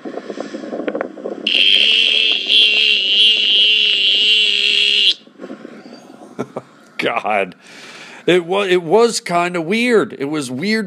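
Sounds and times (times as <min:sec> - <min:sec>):
quieter outdoor noise: 0:00.0 - 0:10.8
chorus of mating cicadas droning on a sunny afternoon: 0:01.5 - 0:05.2
speech: 0:07.0 - 0:07.6, 0:08.2 - 0:10.8.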